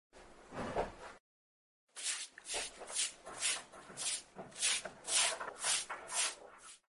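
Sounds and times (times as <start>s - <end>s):
cleaning sounds: 2.0s - 6.9s.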